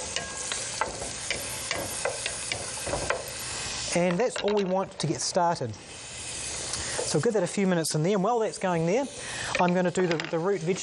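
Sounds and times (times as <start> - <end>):
rice sizzling in a little hot oil: 0.0 - 4.3, 5.8 - 9.5
speech: 4.0 - 5.9, 7.1 - 10.8.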